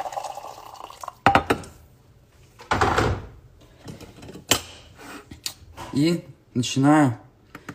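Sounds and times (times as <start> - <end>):
boiling water pouring from a gooseneck kettle: 0.0 - 1.2
kettle and cup clinking and knocking while handled: 0.0 - 1.7
speech: 6.0 - 7.2.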